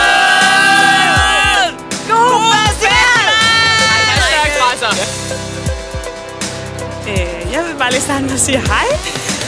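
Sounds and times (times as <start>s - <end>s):
festival crowd voices whooping and shouting: 0.0s - 4.6s
amplified festival music with a steady thumping beat: 0.0s - 9.4s
speech: 7.9s - 9.3s.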